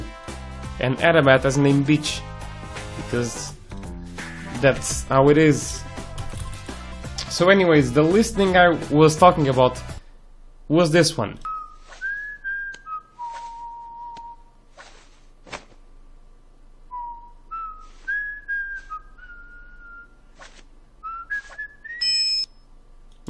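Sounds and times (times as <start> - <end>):
speech: 0.8 - 2.3, 3.0 - 3.6, 4.6 - 5.9, 7.4 - 9.9, 10.7 - 11.5
person whistling a slow meandering tune: 11.5 - 14.5, 16.9 - 20.2, 21.0 - 22.4
soft footstep-like scuffs and rustles: 14.8 - 15.8.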